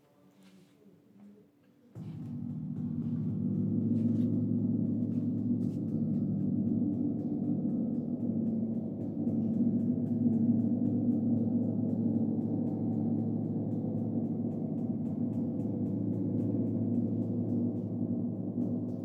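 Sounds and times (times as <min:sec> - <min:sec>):
large gong vibration: 0:02.0 - 0:19.0.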